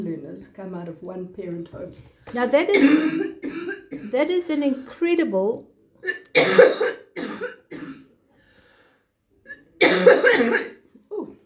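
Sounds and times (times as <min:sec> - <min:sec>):
speech: 0:00.0 - 0:07.0
harsh coughing: 0:02.7 - 0:04.2, 0:06.0 - 0:08.2, 0:09.5 - 0:10.8.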